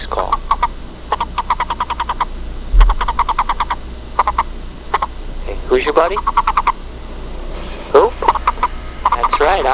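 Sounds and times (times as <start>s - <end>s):
Sonoran Desert toad release call: 0.3s - 5.2s, 6.1s - 6.8s, 8.0s - 9.7s.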